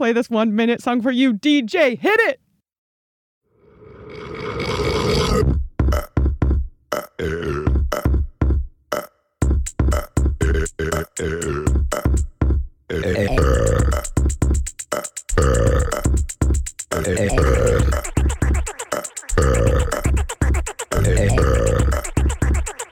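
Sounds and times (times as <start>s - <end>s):
speech: 0.0s - 2.4s
burps pitched up and down into melodic notes: 5.0s - 8.3s, 8.9s - 12.2s, 12.9s - 14.1s, 15.0s - 16.2s, 16.9s - 22.9s
thumping low beat: 5.5s - 6.7s, 7.6s - 8.7s, 9.4s - 12.8s, 13.4s - 22.8s.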